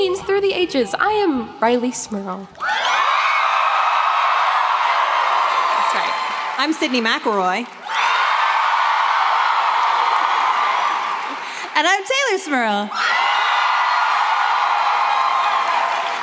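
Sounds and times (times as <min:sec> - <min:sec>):
speech: 0:00.0 - 0:03.0, 0:06.6 - 0:07.8, 0:11.8 - 0:13.1
live audience cheering and whooping: 0:02.6 - 0:11.6, 0:12.9 - 0:16.2.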